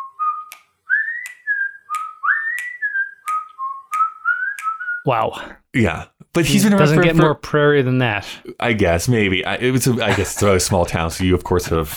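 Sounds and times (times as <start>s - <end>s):
person whistling a bright bouncy TV theme tune: 0.0s - 5.1s
sharp clicks like finger snaps: 0.4s - 4.9s
speech: 5.0s - 11.9s
laughter: 9.8s - 11.9s.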